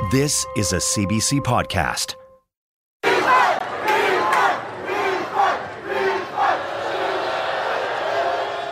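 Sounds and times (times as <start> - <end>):
speech: 0.1 - 2.2
large stadium crowd chanting in unison: 3.0 - 8.6.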